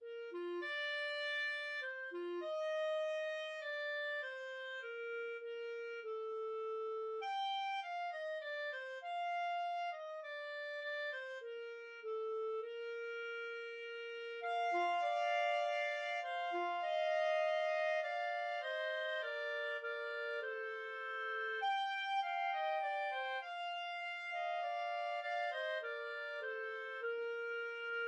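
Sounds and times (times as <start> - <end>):
clarinet trio playing: 0.1 - 28.0.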